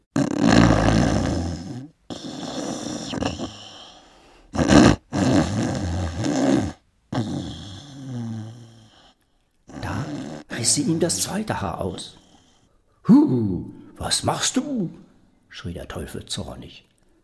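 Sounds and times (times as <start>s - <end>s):
loud rumbling snoring: 0.0s - 12.7s
speech: 10.6s - 12.2s, 13.1s - 16.9s.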